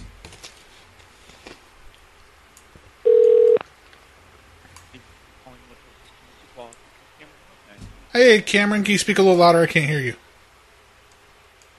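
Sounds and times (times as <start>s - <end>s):
hotel phone keypad tone: 3.1s - 3.6s
speech: 8.2s - 10.2s.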